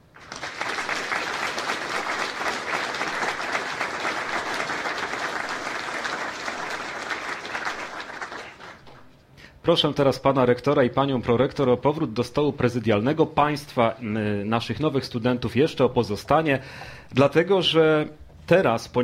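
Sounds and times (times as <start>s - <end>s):
large audience applauding at a university matriculation ceremony: 0.0s - 9.1s
speech: 9.6s - 19.0s.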